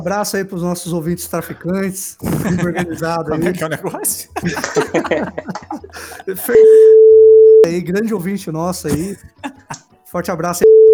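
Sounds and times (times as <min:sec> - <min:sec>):
man talking excitedly: 0:00.0 - 0:06.9, 0:07.7 - 0:10.6
speech: 0:00.0 - 0:09.5, 0:10.1 - 0:10.9
laughter: 0:02.2 - 0:06.9, 0:08.9 - 0:09.9
censor bleep over cut speech: 0:06.6 - 0:07.7.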